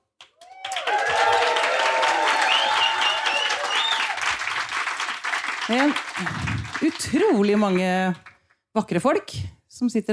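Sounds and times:
live audience applauding in Oslo Norway: 0:00.2 - 0:08.4
audience cheering: 0:00.4 - 0:08.0
whistles from audience: 0:02.4 - 0:04.2
speech: 0:05.7 - 0:10.1.

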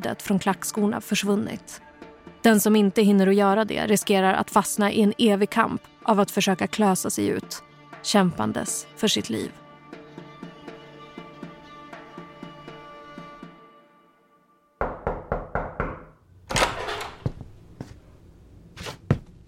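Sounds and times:
speech: 0:00.0 - 0:09.6
father knocking on a bedroom door in the morning: 0:14.8 - 0:16.2.

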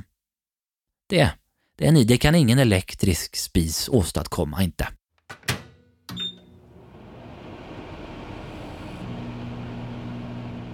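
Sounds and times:
speech: 0:01.1 - 0:05.0
microwave oven door shutting: 0:05.3 - 0:06.6
microwave oven heating with electric hum: 0:06.1 - 0:10.7.

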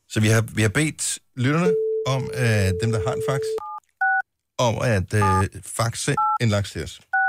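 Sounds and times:
speech: 0:00.1 - 0:03.7, 0:04.6 - 0:07.1
touch-tone beeps of a phone number being dialed: 0:01.7 - 0:04.2.

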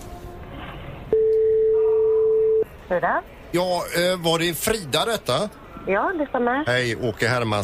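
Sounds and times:
phone ringback tone of a call from Landvetter Airport to Sweden: 0:01.1 - 0:02.6
speech: 0:02.9 - 0:07.6.

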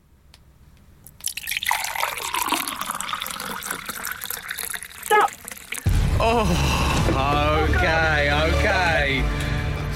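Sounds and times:
liquid pouring into a container: 0:01.2 - 0:05.9
speech: 0:06.3 - 0:09.2.

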